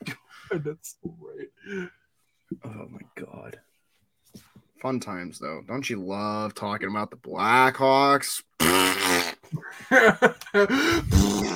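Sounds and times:
speech: 0:00.5 - 0:03.7, 0:04.3 - 0:11.5
loud drawn-out fart: 0:08.6 - 0:09.6, 0:11.0 - 0:11.5.

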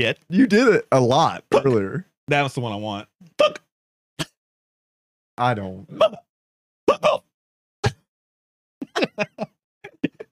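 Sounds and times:
speech: 0:00.0 - 0:03.6, 0:05.4 - 0:06.2, 0:09.0 - 0:09.5
hiccups: 0:03.4 - 0:04.4, 0:05.9 - 0:06.3, 0:06.9 - 0:07.2
laughter: 0:08.8 - 0:10.3.

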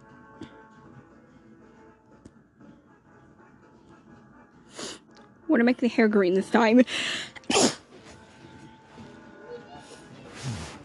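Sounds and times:
speech: 0:05.5 - 0:07.3
person sneezing: 0:07.5 - 0:07.8
soft breathy exhale or sniff: 0:10.3 - 0:10.8.

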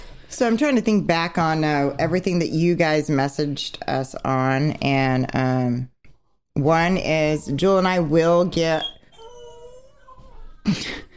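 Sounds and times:
speech: 0:00.3 - 0:05.9, 0:06.6 - 0:09.0, 0:10.6 - 0:11.0
dog whining: 0:09.0 - 0:10.9.

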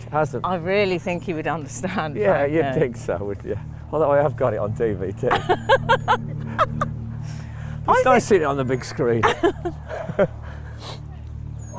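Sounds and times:
low hum: 0:00.0 - 0:11.7
speech: 0:00.1 - 0:06.9, 0:07.9 - 0:11.0
laughter: 0:05.2 - 0:07.2, 0:09.0 - 0:11.0
dogs swimming in a pool yipping and whimpering: 0:11.6 - 0:11.7.

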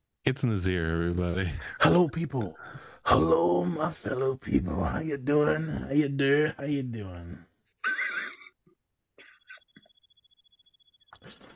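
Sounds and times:
speech: 0:00.3 - 0:07.5
cricket chirping played through a laptop's small speaker: 0:09.7 - 0:11.2.

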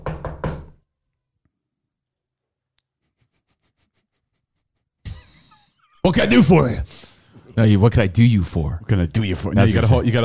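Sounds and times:
knocking on a front door: 0:00.0 - 0:00.8
speech: 0:06.0 - 0:07.0, 0:07.6 - 0:10.2.

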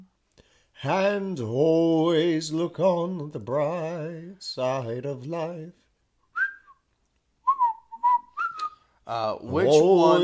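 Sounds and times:
speech: 0:00.8 - 0:05.8, 0:09.1 - 0:10.2
person whistling a tune: 0:06.3 - 0:08.9.

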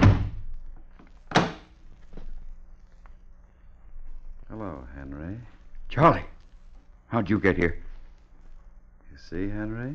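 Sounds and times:
door opening with a thud: 0:00.0 - 0:00.4, 0:01.3 - 0:01.7
low hum: 0:00.0 - 0:09.9
speech: 0:04.6 - 0:06.3, 0:07.1 - 0:07.8, 0:09.2 - 0:09.9.

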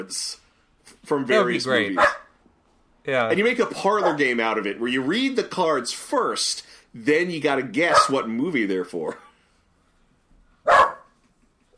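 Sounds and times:
speech: 0:00.0 - 0:00.4, 0:01.0 - 0:02.2, 0:03.0 - 0:09.2
dog barking: 0:01.9 - 0:02.3, 0:04.0 - 0:04.2, 0:07.9 - 0:08.2, 0:10.6 - 0:11.2.

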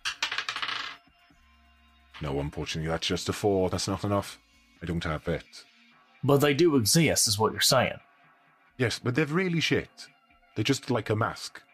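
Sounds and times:
small hard dice clattering onto a floor: 0:00.0 - 0:01.0
speech: 0:02.2 - 0:08.1, 0:08.8 - 0:11.7.

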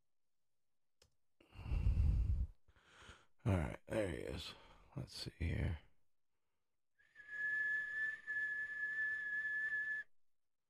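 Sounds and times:
speech: 0:03.4 - 0:05.9
person whistling a tune: 0:07.0 - 0:10.1.

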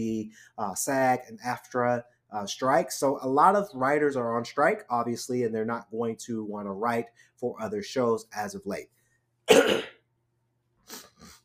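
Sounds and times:
speech: 0:00.0 - 0:10.0
person coughing: 0:09.5 - 0:10.0.

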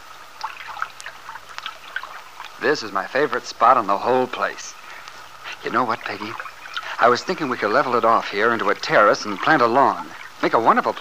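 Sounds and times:
small brook trickling: 0:00.0 - 0:10.9
speech: 0:02.6 - 0:04.8, 0:05.6 - 0:10.9.

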